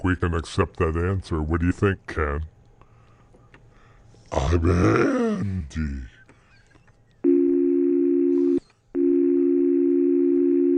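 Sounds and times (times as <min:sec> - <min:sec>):
speech: 0:00.0 - 0:02.5, 0:04.3 - 0:06.1
voice imitating a telephone dial tone: 0:07.3 - 0:10.7.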